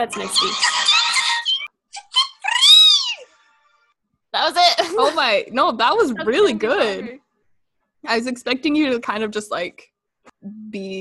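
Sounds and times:
speech: 0.0s - 0.8s, 5.0s - 7.2s, 8.0s - 11.0s
squeaky high-pitched cartoon creature cry: 0.7s - 3.3s.

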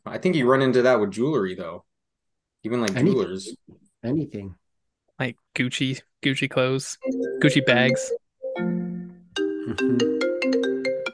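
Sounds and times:
speech: 0.1s - 1.9s, 2.6s - 4.6s, 5.2s - 8.8s, 9.7s - 10.3s
computer playing a bright melodic phone ringtone: 7.0s - 11.1s.

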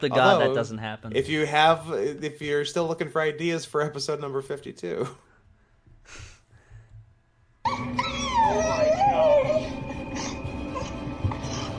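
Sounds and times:
speech: 0.0s - 5.3s, 6.1s - 6.3s
dog howling in long wavering sliding tones: 7.7s - 11.7s.

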